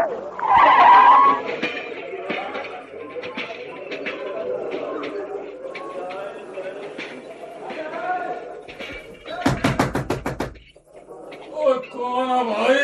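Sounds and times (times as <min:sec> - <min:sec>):
people talking: 0:00.1 - 0:12.8
railway employee knocking on a train compartment door: 0:09.5 - 0:10.7.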